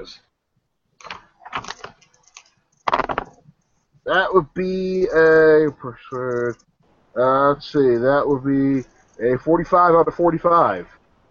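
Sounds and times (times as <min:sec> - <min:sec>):
speech: 0:00.0 - 0:00.3, 0:04.0 - 0:11.0
dice clattering across a hard surface: 0:02.4 - 0:03.4.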